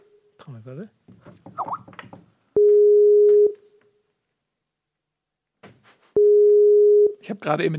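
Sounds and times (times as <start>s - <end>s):
speech: 0.6s - 1.4s, 7.3s - 7.7s
ringback tone over an internet call: 2.6s - 3.6s, 6.2s - 7.1s.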